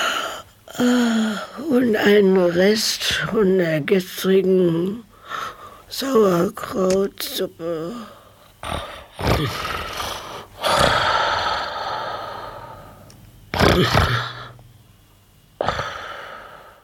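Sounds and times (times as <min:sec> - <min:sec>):
voice imitating a witch's exaggerated snoring: 0:00.0 - 0:01.7, 0:07.7 - 0:12.9, 0:13.5 - 0:14.6, 0:15.6 - 0:16.8
speech: 0:00.8 - 0:09.9, 0:13.8 - 0:14.3.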